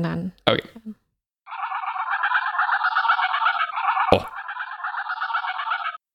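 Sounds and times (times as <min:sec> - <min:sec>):
speech: 0:00.0 - 0:01.0
geese honking and cackling: 0:01.5 - 0:06.0.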